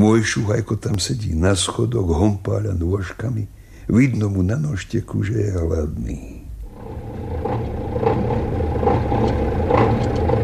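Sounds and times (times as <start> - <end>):
speech: 0.0 - 6.4
truck engine idling: 6.7 - 10.4.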